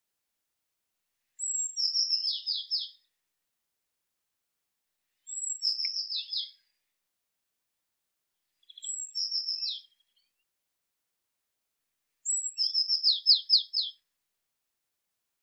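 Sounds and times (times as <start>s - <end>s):
Eurasian blue tit calling: 1.4s - 2.9s, 5.3s - 6.5s, 8.7s - 9.9s, 12.3s - 13.9s.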